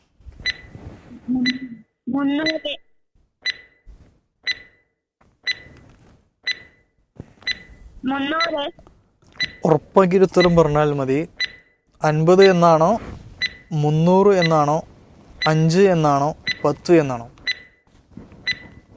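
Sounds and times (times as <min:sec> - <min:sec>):
quiz countdown timer ticking: 0:01.4 - 0:02.8, 0:03.4 - 0:03.8, 0:04.4 - 0:04.8, 0:05.4 - 0:05.7, 0:06.4 - 0:06.8, 0:07.5 - 0:08.8, 0:09.4 - 0:12.8, 0:13.4 - 0:14.8, 0:15.4 - 0:17.7
speech: 0:02.2 - 0:02.8, 0:08.0 - 0:08.8, 0:09.6 - 0:11.4, 0:12.0 - 0:13.1, 0:13.7 - 0:17.4.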